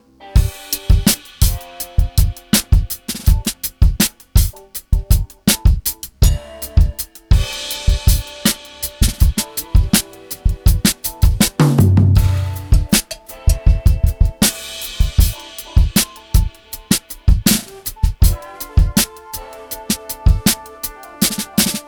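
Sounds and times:
drums: 0.3 - 21.8.

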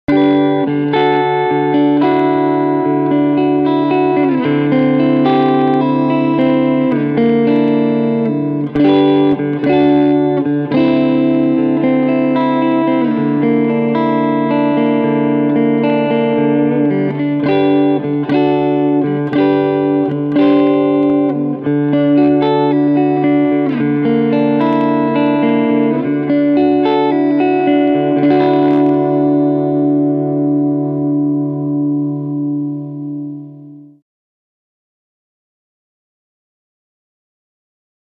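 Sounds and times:
clean electric guitar with neck EMG pickup: 0.0 - 34.0.

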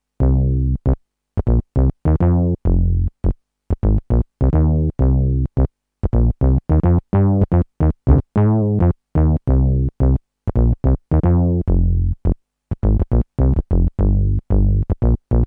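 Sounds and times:
TX7 synth bass: 0.2 - 15.4.

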